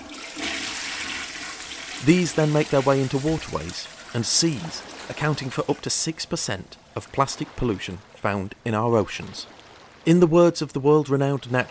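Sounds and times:
toilet flushing: 0:00.0 - 0:03.1
speech: 0:02.0 - 0:11.6.

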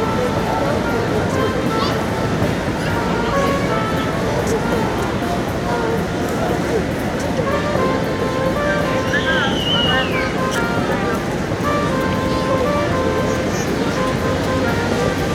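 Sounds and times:
many overlapping voices in a calm city park: 0:00.0 - 0:15.3
faint higher calls: 0:08.4 - 0:13.9.

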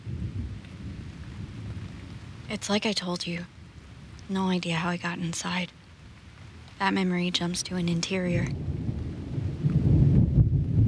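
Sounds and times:
deep rolling thunder in a thunderstorm: 0:00.0 - 0:02.5, 0:08.5 - 0:10.8
faint hiss of rain: 0:00.0 - 0:10.8
speech: 0:02.5 - 0:03.6, 0:04.3 - 0:05.8, 0:06.8 - 0:08.7.

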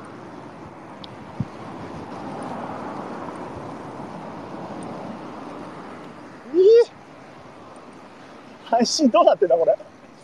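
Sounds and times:
strong wind roaring outdoors: 0:00.0 - 0:06.8
speech: 0:08.7 - 0:09.9.

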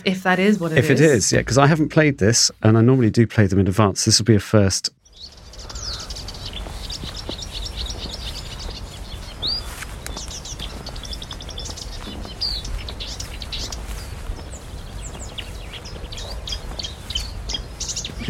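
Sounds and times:
speech: 0:00.0 - 0:05.3
marsh warbler singing: 0:05.0 - 0:18.2.

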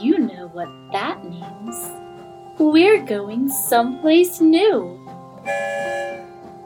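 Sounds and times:
speech: 0:00.5 - 0:06.3
train whistle blowing as the train sets off: 0:05.4 - 0:06.4.

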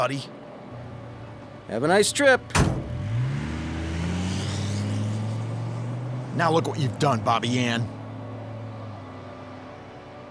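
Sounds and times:
speech: 0:00.0 - 0:00.4, 0:01.7 - 0:02.8, 0:06.4 - 0:08.0
car engine revving and accelerating as the vehicle pulls away: 0:02.4 - 0:10.0.

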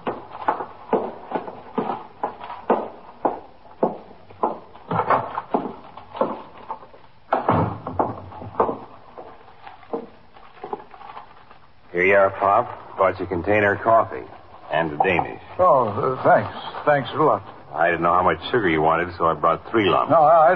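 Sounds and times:
man climbing wooden stairs in a police station house: 0:00.0 - 0:10.2
heavier door-like thud: 0:07.3 - 0:08.9
speech: 0:12.2 - 0:20.5.

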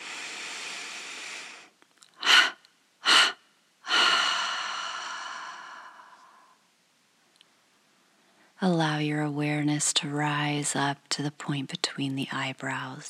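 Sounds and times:
slow breathing through the mouth during a meditation: 0:00.0 - 0:06.6
speech: 0:08.6 - 0:13.0.

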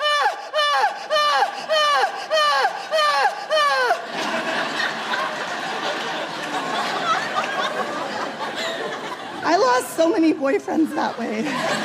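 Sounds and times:
voice imitating loud melodramatic sobbing: 0:00.0 - 0:04.1
laughter: 0:00.6 - 0:09.9, 0:10.7 - 0:11.8
speech: 0:09.7 - 0:11.8.

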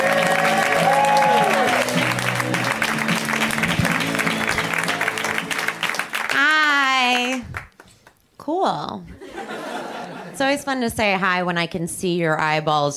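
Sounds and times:
audience cheering and whooping at a live comedy show: 0:00.0 - 0:06.5
audience applause at a live comedy show: 0:00.0 - 0:07.8
laughter: 0:09.2 - 0:10.4
speech: 0:10.4 - 0:12.9.

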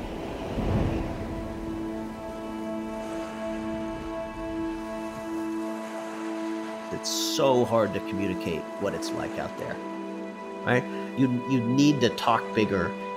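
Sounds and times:
deep rumble of thunder: 0:00.0 - 0:04.8
sustained droning tone: 0:00.0 - 0:06.8
steady rain in a thunderstorm: 0:00.0 - 0:06.9
speech: 0:07.0 - 0:10.0, 0:10.6 - 0:13.0.

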